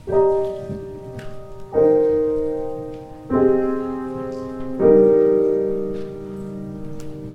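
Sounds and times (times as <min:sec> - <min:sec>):
grand piano chords: 0:00.0 - 0:07.3.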